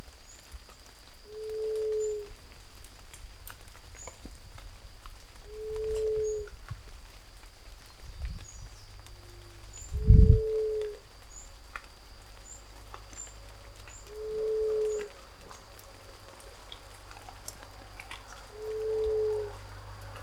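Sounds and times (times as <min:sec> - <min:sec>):
Ruddy Quail-dove Geotrygon montana calling: 0:01.3 - 0:02.4, 0:05.4 - 0:06.6, 0:08.6 - 0:11.0, 0:12.4 - 0:19.8.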